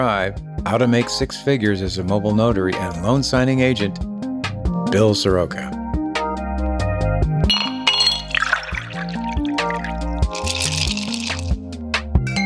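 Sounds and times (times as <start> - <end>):
speech: 0.0 - 4.1, 4.9 - 5.8
steady music: 0.0 - 12.4
glasses clinking in a toast: 7.5 - 11.5
splashy liquid-like sounds: 7.5 - 11.6.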